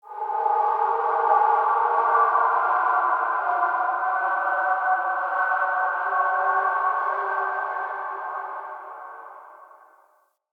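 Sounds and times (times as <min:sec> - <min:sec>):
crypt spirit cry ambience: 0:00.1 - 0:10.0.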